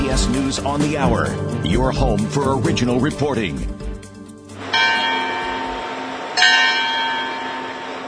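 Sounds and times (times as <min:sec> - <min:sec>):
speech: 0:00.1 - 0:03.8
large church bells ringing at the Vatican: 0:04.6 - 0:08.0.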